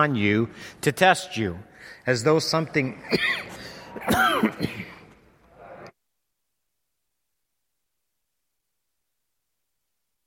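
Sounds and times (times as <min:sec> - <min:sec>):
speech: 0:00.0 - 0:04.9
person clearing throat: 0:03.0 - 0:05.1
person coughing: 0:03.0 - 0:05.2.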